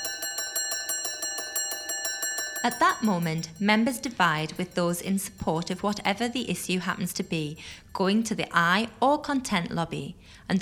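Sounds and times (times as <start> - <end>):
parliamentary division bell ringing: 0.0 - 8.0
speech: 2.6 - 10.6.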